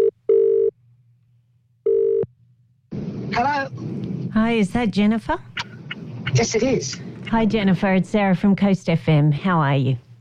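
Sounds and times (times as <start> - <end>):
electronic phone ringback tone: 0.0 - 0.7, 1.9 - 2.3
speech: 3.4 - 5.5, 6.3 - 10.0.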